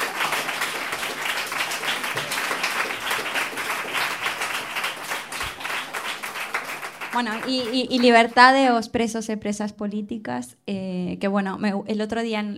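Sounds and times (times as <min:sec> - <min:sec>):
audience applause: 0:00.0 - 0:08.6
speech: 0:07.2 - 0:12.5.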